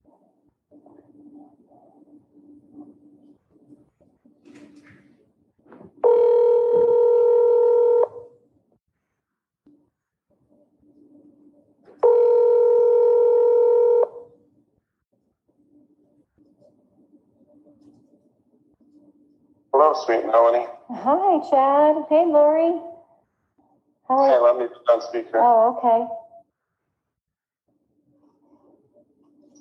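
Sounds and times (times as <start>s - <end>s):
faint low hum on a phone line: 0.0s - 29.6s
ringback tones of an outgoing phone call: 6.0s - 8.3s, 12.0s - 14.3s
speech: 20.0s - 22.9s, 24.1s - 26.2s.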